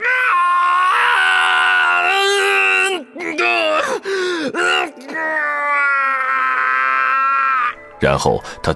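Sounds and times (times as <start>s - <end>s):
man screaming: 0.0s - 7.8s
man gasping: 3.8s - 4.6s.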